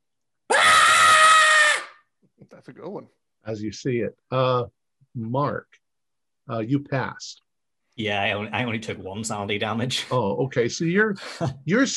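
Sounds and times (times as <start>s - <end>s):
person screaming loud high piercing scream without words: 0.5s - 2.0s
speech: 2.5s - 5.8s, 6.5s - 7.4s, 8.0s - 11.9s.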